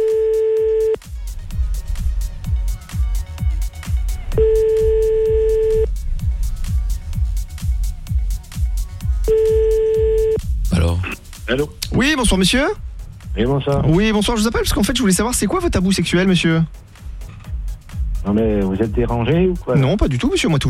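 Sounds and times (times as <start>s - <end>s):
telephone line ringback tone beeps: 0.0s - 1.0s, 4.4s - 5.9s, 9.3s - 10.4s
thumping music bed: 0.0s - 20.6s
speech: 12.2s - 16.9s, 18.3s - 20.6s.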